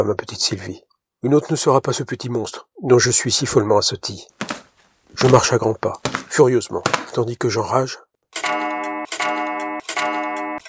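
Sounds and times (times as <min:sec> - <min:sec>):
speech: 0:00.0 - 0:08.6
pendulum clock ticking: 0:08.4 - 0:10.6.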